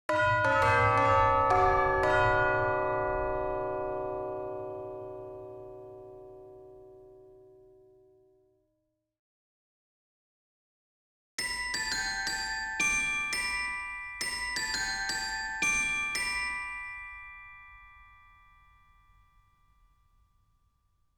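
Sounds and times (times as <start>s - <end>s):
bells in G major: 0.1s - 6.8s, 11.4s - 20.3s.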